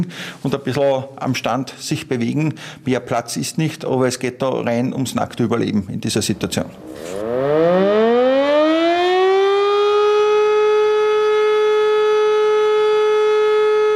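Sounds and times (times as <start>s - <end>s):
speech: 0.0s - 7.9s
civil defense warning siren in a civil protection test alarm: 6.7s - 13.9s.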